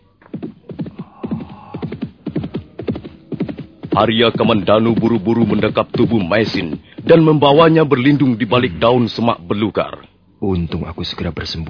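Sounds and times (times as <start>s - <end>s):
horse hooves galloping: 0.0s - 9.1s
speech: 4.0s - 11.6s.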